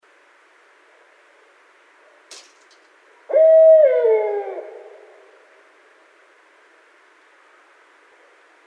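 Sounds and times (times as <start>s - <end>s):
barred owl hooting: 3.3s - 5.4s.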